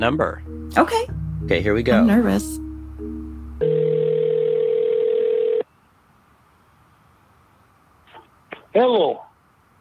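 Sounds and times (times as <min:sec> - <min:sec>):
speech: 0:00.0 - 0:02.6, 0:08.8 - 0:09.3
soft low buzz: 0:00.0 - 0:08.1
telephone dial tone while placing a call: 0:03.6 - 0:05.6.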